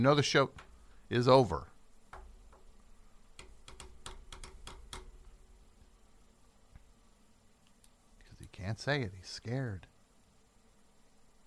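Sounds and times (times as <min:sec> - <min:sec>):
speech: 0:00.0 - 0:01.7, 0:08.6 - 0:09.9
low hum: 0:00.0 - 0:11.4
typing on a keyboard: 0:03.4 - 0:05.1.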